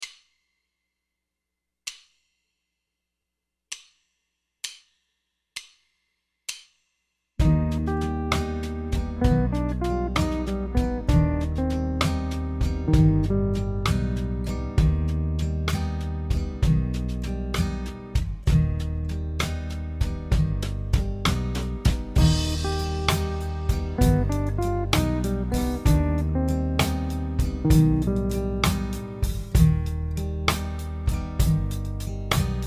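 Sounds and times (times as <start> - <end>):
jazz guitar chords over melodic minor scale: 7.4 - 32.6.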